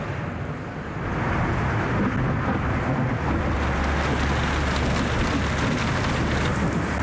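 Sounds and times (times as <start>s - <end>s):
low rumbling hum: 1.0s - 7.0s
heavy rain pouring down: 2.6s - 7.0s.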